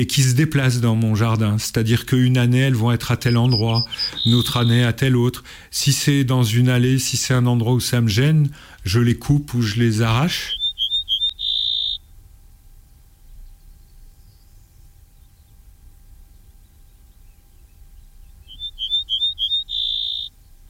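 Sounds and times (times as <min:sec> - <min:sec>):
speech: 0:00.0 - 0:10.6
ortolan bunting song played back on the radio: 0:00.0 - 0:12.8, 0:17.7 - 0:20.3.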